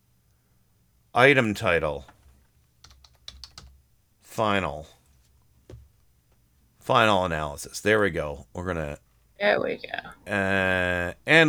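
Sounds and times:
speech: 0:01.2 - 0:02.2, 0:04.4 - 0:05.0, 0:06.9 - 0:11.4
typing on a computer keyboard: 0:02.1 - 0:03.8.

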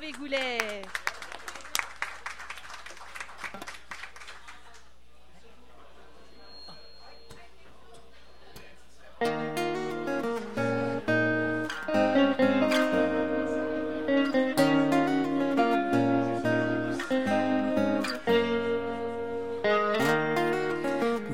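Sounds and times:
dense audience applause welcoming a first official performance: 0:00.0 - 0:04.8
speech: 0:00.1 - 0:01.0
music: 0:09.2 - 0:21.3.

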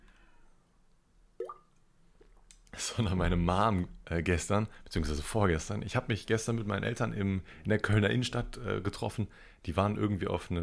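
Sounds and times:
person swallowing a sip of water: 0:01.4 - 0:02.5
speech: 0:02.9 - 0:10.6.

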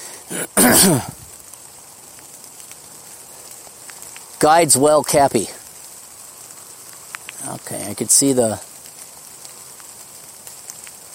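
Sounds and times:
rain falling outdoors: 0:00.0 - 0:11.1
speech: 0:00.3 - 0:01.2, 0:04.4 - 0:05.6, 0:07.7 - 0:08.7.

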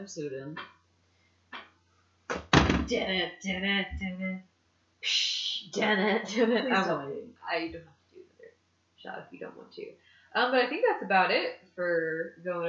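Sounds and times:
speech: 0:00.0 - 0:00.8, 0:02.9 - 0:08.0, 0:09.0 - 0:12.6
door thump: 0:02.3 - 0:03.0.

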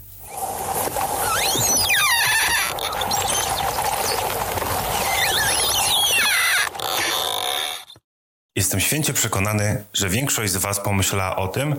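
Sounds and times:
ice creaking and groaning under water pressure: 0:00.2 - 0:08.0
speech: 0:08.7 - 0:11.7.

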